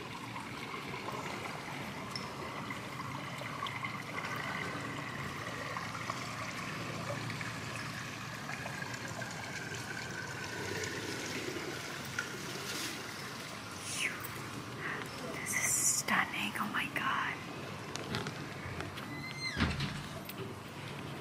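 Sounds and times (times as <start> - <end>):
flowing water: 0.0 - 21.1.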